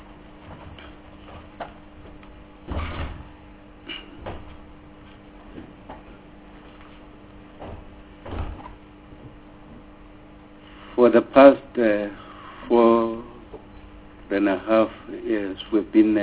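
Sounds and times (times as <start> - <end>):
quiet hum: 0.0 - 16.2
door pushed shut with a dull thud: 2.7 - 3.4, 7.6 - 8.7
speech: 11.0 - 13.1, 14.3 - 16.2.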